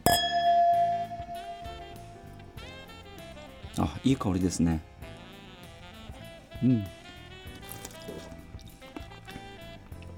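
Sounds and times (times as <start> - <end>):
two wine glasses clinking in a toast: 0.0 - 3.1
speech: 3.8 - 4.9, 6.6 - 7.0.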